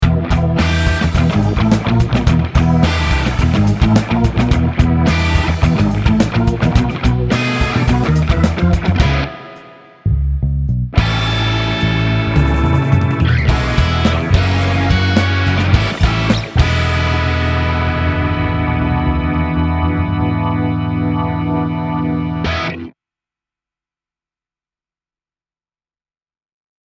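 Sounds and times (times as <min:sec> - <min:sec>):
light organ playing: 0:00.1 - 0:09.9, 0:11.0 - 0:22.6.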